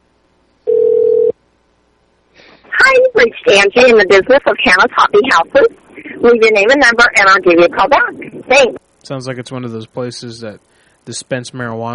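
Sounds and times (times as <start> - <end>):
telephone tone while dialing a number: 0.7 - 1.3
speech: 3.2 - 11.9.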